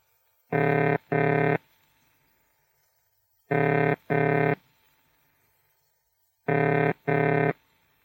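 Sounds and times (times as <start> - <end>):
telephone ringing tone: 0.5 - 1.6, 3.5 - 4.6, 6.5 - 7.6.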